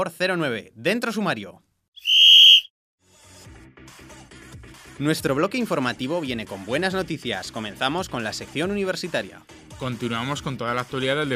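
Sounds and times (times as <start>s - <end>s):
speech: 0.0s - 1.7s, 5.0s - 11.3s
referee's whistle signalling the start of a match: 2.0s - 2.7s.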